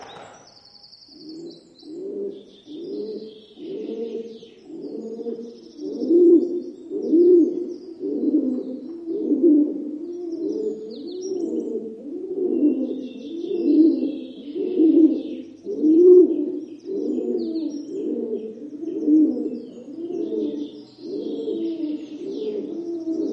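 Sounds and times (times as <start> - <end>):
rock pigeon giving low rolling coos: 1.1 - 23.3.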